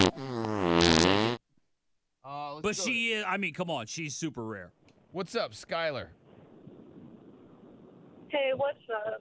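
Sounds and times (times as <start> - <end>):
fart sound effect: 0.0 - 1.4
speech: 2.6 - 6.2, 8.3 - 9.1.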